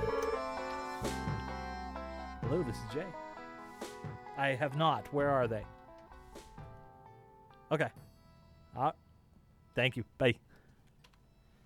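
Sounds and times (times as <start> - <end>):
mobile phone ringtone playing a short melodic phrase: 0.0 - 4.4
speech: 2.5 - 3.2, 4.0 - 5.8, 7.7 - 8.0, 8.8 - 9.0, 9.8 - 10.5.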